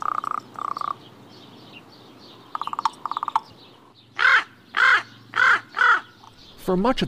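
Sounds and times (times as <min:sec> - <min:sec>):
common raven croaking caws: 0:00.0 - 0:01.0, 0:02.5 - 0:03.5, 0:04.2 - 0:06.4
common raven rattling knocks: 0:00.0 - 0:06.6.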